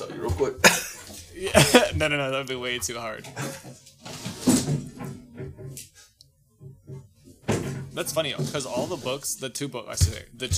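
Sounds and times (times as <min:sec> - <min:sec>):
brief wooden creaking of cabinet door: 0:00.0 - 0:10.5
speech: 0:00.2 - 0:00.8, 0:01.4 - 0:03.8, 0:08.0 - 0:10.5
laughter: 0:00.6 - 0:02.0, 0:03.4 - 0:03.7
cabinet door in front of a bookshelf opening: 0:03.2 - 0:05.8, 0:06.6 - 0:09.1.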